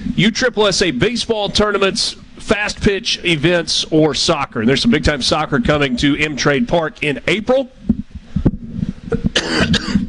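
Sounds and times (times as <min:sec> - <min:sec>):
speech: 0:00.2 - 0:07.8
person coughing: 0:09.2 - 0:10.0.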